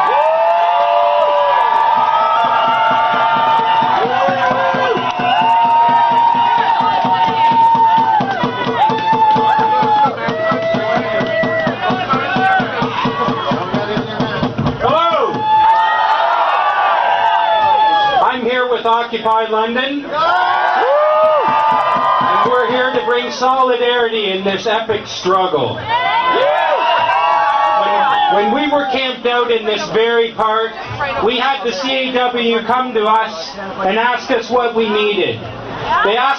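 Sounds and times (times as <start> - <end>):
big crowd in a park cheering and whooping: 0.0 - 14.0, 14.8 - 18.4, 20.1 - 23.8, 25.8 - 30.0, 35.7 - 36.3
speech: 19.1 - 20.4, 23.2 - 25.9, 28.3 - 36.3.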